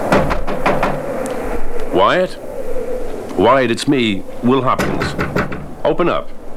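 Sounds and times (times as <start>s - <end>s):
knocking on a wooden cabin door: 0.1s - 1.0s, 4.8s - 5.7s
speech: 2.0s - 2.5s, 3.4s - 6.4s.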